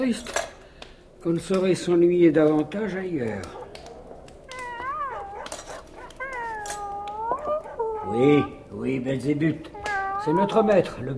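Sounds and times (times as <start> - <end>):
speech: 0.0 - 0.4, 1.2 - 3.6, 8.1 - 11.1
dog howling: 2.5 - 8.7, 9.7 - 11.0.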